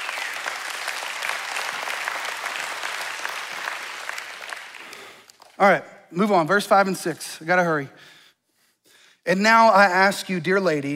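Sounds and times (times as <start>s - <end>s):
audience cheering: 0.0s - 4.9s
crowd applauding: 0.0s - 5.6s
speech: 5.6s - 8.2s, 9.2s - 10.9s.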